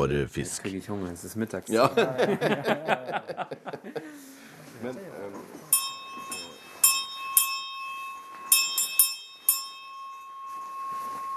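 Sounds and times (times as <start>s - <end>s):
speech: 0.0s - 5.6s
laughter: 1.7s - 4.4s
hand bell ringing: 5.7s - 11.3s.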